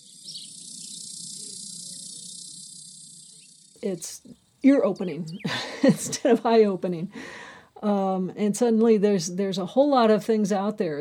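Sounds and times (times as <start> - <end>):
cicadas chorusing: 0.0 - 5.9
speech: 3.8 - 10.9.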